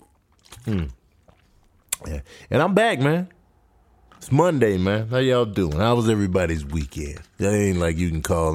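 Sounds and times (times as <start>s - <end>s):
sip and gulp of water: 0.0s - 2.0s
speech: 0.6s - 1.0s, 2.0s - 3.4s, 4.2s - 8.5s.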